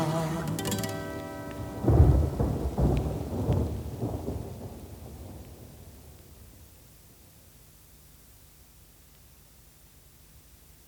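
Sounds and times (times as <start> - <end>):
sustained tones: 0.0 - 2.9
soft rain-like hiss: 0.0 - 10.8
deep peal of thunder: 1.5 - 6.8.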